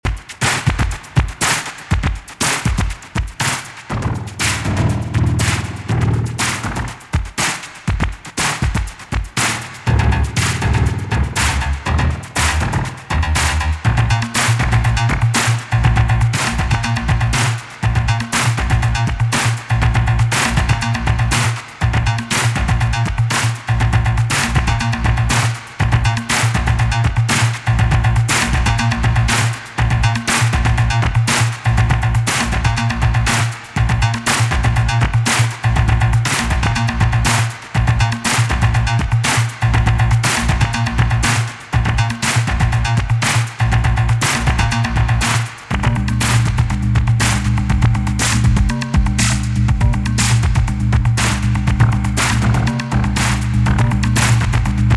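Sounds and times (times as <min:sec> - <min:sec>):
electronic drum: 0:00.0 - 0:54.9.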